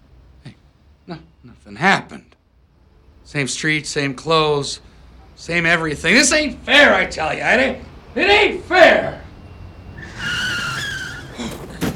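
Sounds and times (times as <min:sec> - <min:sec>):
speech: 0:01.1 - 0:02.4, 0:03.3 - 0:09.2
car tires screeching in a long wavering skid: 0:10.0 - 0:11.9.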